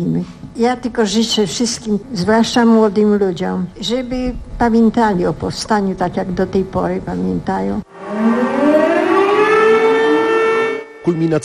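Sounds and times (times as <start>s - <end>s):
speech: 0.0s - 8.4s, 11.1s - 11.4s
air-raid sirens wailing across Warsaw: 7.8s - 11.4s.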